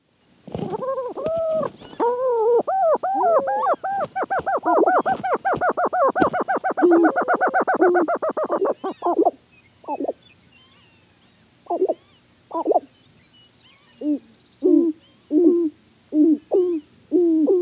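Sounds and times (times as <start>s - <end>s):
black grouse calling: 0.5s - 17.5s.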